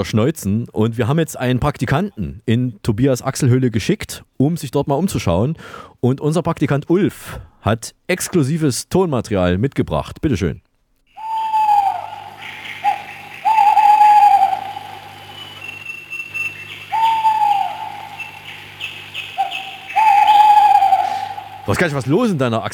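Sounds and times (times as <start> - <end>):
speech: 0.0 - 10.7, 21.7 - 22.7
birds chirping and twittering: 11.1 - 22.7
eagle owl hooting: 11.2 - 22.7.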